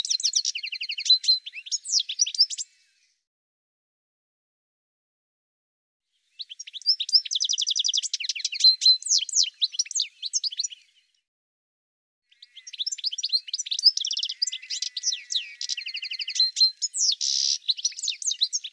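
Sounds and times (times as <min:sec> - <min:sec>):
bird song of high chirps and trills: 0:00.0 - 0:02.9, 0:06.3 - 0:11.1, 0:12.3 - 0:18.7.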